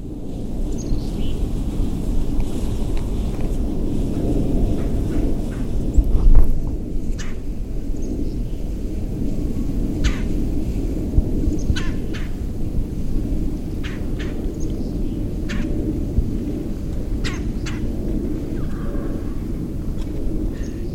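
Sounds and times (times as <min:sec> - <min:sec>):
steady loud low rumble outdoors: 0:00.0 - 0:20.9
birds calling in a field near Fargo: 0:00.6 - 0:01.4, 0:07.1 - 0:08.7, 0:11.5 - 0:12.4, 0:13.7 - 0:15.8, 0:17.1 - 0:19.7.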